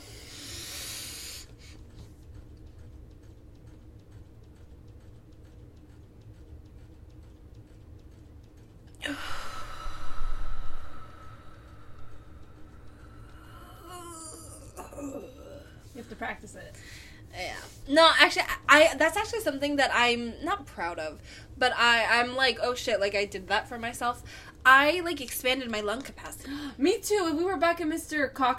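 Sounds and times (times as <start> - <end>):
breathy intake of breath in a 4-7-8 breathing exercise: 0.0 - 1.7, 9.0 - 12.4
speech: 16.2 - 28.5.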